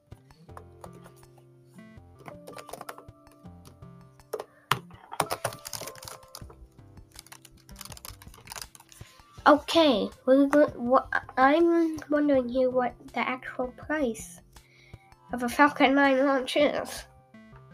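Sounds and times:
fast typing on a computer keyboard: 2.2 - 3.0, 5.2 - 6.5, 7.1 - 9.0
speech: 9.5 - 14.4, 15.3 - 17.1.

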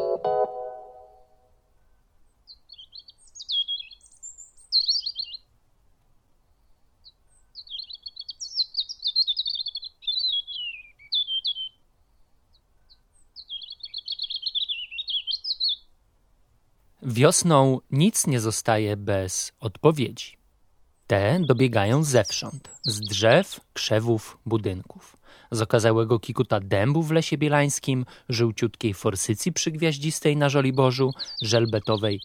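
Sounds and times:
spring birds chirping and trilling: 1.8 - 5.5, 6.5 - 15.9, 21.0 - 32.2
speech: 17.1 - 20.4, 21.1 - 32.2.

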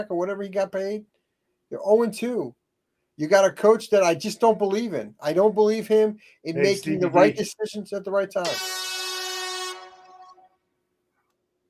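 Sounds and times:
speech: 0.0 - 2.6, 3.2 - 8.8
loud sustained air horn blast: 8.4 - 10.6.

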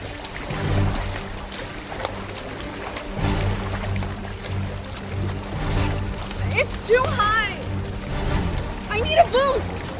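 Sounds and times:
water sloshing and splashing from something moving in the water: 0.0 - 9.9.

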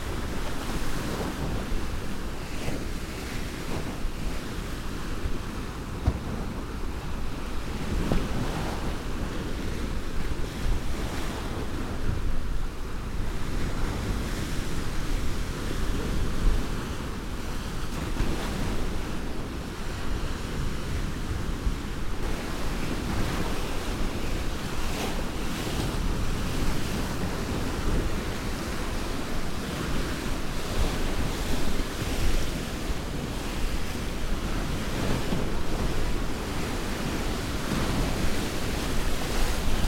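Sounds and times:
gusting wind buffeting the microphone: 0.0 - 39.8
waves crashing in a roar of surf: 0.0 - 39.8.

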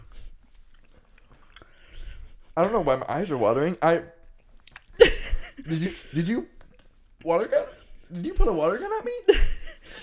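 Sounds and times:
person chewing food: 0.0 - 2.6, 4.2 - 5.0
speech: 2.6 - 4.2, 5.6 - 6.6, 7.2 - 9.4.

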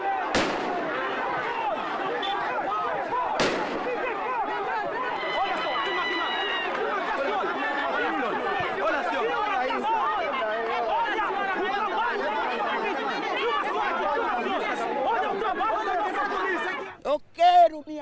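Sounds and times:
agitated crowd in Angola shouting and clamoring: 0.0 - 17.0
gunshots during police repression of church members in Angola: 0.2 - 1.2, 3.4 - 4.4.

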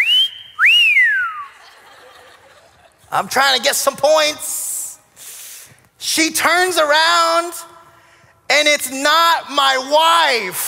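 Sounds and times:
loud piercing human whistle to get a woman's attention: 0.0 - 1.6
laughter: 1.4 - 3.1
speech: 3.1 - 4.6, 6.2 - 7.7, 8.6 - 10.6.

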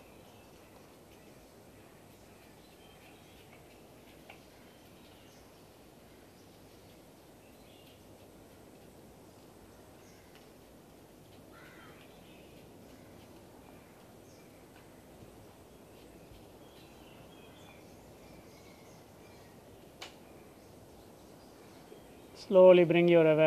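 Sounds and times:
birds calling at a distance: 0.0 - 23.4
harsh crow-like caws: 11.5 - 12.1
speech: 22.4 - 23.4.

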